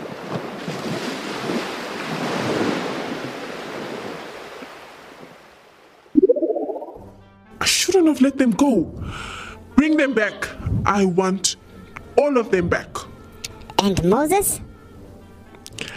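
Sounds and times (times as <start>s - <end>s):
ocean waves breaking on the shore: 0.0s - 6.1s
abrupt rising tonal sound: 6.2s - 7.0s
speech: 8.1s - 11.6s, 12.2s - 13.0s, 13.8s - 14.6s.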